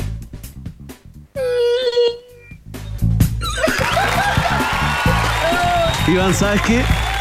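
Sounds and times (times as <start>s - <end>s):
person imitating a whale call with a Doppler effect: 1.4s - 2.6s
laughter: 3.5s - 5.5s
speech: 6.1s - 7.0s.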